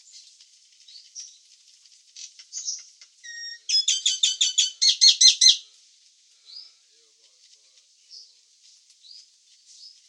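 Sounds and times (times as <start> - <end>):
Nias hill myna soft squeak: 2.2 - 5.6.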